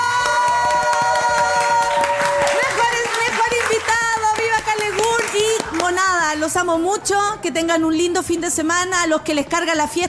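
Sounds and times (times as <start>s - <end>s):
crowd cheering and shouting: 0.0s - 3.4s
applause: 0.0s - 6.0s
speech: 6.5s - 10.0s.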